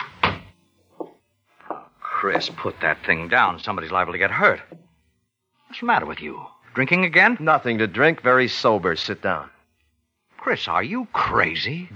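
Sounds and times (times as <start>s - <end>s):
soft short knock of a door settling: 0.0s - 2.8s
speech: 2.2s - 4.8s, 5.8s - 9.6s, 10.4s - 11.9s.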